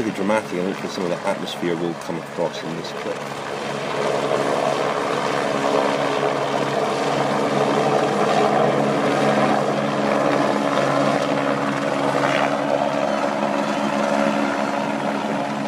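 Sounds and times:
loud helicopter engine drone: 0.0s - 15.6s
speech: 0.1s - 4.2s.

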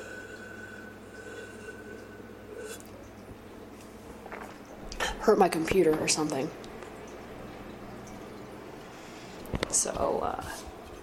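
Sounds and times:
stream of water pouring into a cup for tea: 0.0s - 5.4s, 6.5s - 9.7s
speech: 5.3s - 6.7s.

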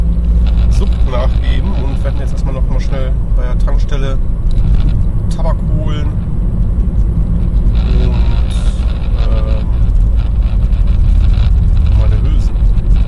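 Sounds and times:
Skoda Yeti car driving with low engine and road rumble: 0.0s - 13.0s
man talking: 0.7s - 4.2s, 5.3s - 6.2s, 7.8s - 9.8s, 11.9s - 12.5s.

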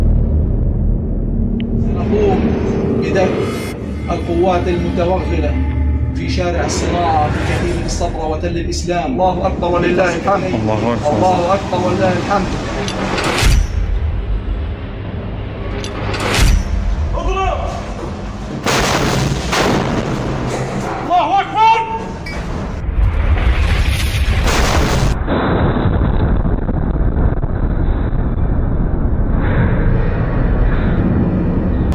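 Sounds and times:
low rumbling: 0.0s - 21.3s, 22.0s - 31.9s
speech: 3.1s - 13.2s
RPG fired at a tank and exploding on impact: 18.6s - 20.5s, 22.9s - 30.0s.

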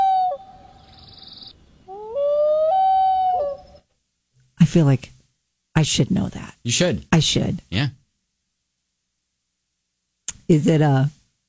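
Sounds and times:
common loon wailing call: 1.9s - 3.8s
speech: 4.7s - 5.2s, 5.8s - 8.0s, 10.5s - 11.2s.

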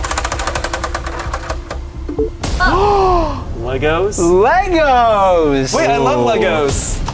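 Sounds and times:
prize wheel spinning and clicking: 0.0s - 1.8s
speech: 2.2s - 3.0s, 3.7s - 7.0s.

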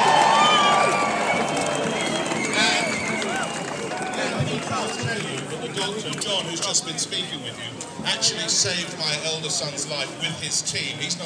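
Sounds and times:
whoops and whistles from audience: 0.0s - 4.1s
large audience applauding for hospital staff: 0.0s - 6.2s
speech: 5.8s - 11.2s.

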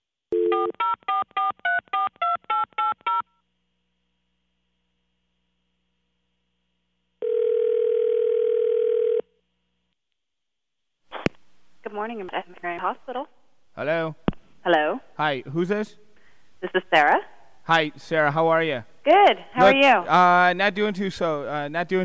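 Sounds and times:
steady loud telephone dial tone: 0.3s - 1.2s, 7.2s - 9.3s
telephone keypad tones dialing a number: 0.4s - 3.2s
speech: 12.0s - 16.0s, 16.6s - 22.0s.

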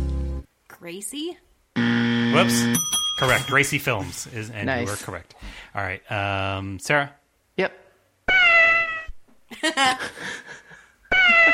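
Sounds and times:
speech: 0.8s - 7.8s, 9.5s - 10.6s
cat meowing in a TV studio logo jingle: 8.3s - 9.2s, 11.1s - 11.5s.

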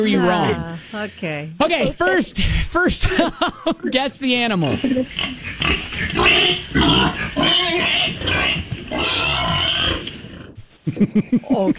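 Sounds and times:
speech: 0.0s - 9.1s, 11.0s - 11.7s
laughter: 2.8s - 5.3s, 10.8s - 11.7s
wild hog grunting and snorting: 4.6s - 10.6s.

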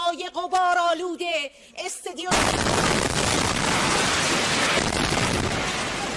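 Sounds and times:
woman speaking during live TV broadcast: 0.0s - 2.4s
airstrike explosion: 2.3s - 6.1s
harsh roar of rumbling and crackling: 2.4s - 6.1s.

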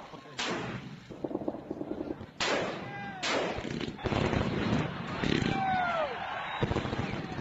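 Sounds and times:
sharp gunshot-like bangs outdoors at night: 0.4s - 0.9s, 2.4s - 5.5s
whistling cries: 5.6s - 7.4s.

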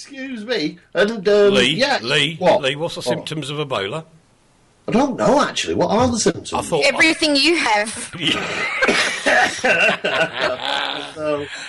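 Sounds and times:
speech: 0.0s - 4.2s, 4.9s - 11.6s
laughter: 8.1s - 11.6s
person coughing: 8.8s - 9.9s.

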